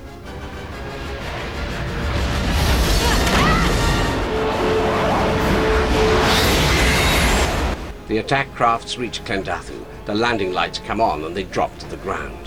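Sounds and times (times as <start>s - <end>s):
whining tones: 0.0s - 12.4s
roaring crashing noise and rumbling booms: 1.1s - 8.0s
loud explosion against cockpit windscreen glass: 1.2s - 7.9s
speech: 8.2s - 12.4s.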